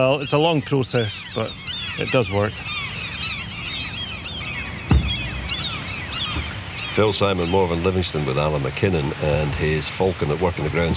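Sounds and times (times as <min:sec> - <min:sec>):
speech: 0:00.0 - 0:02.8, 0:07.0 - 0:10.9
oystercatchers calling in alarm: 0:00.0 - 0:08.2
gulls calling in alarm: 0:00.0 - 0:10.9
low thump: 0:04.9 - 0:06.6.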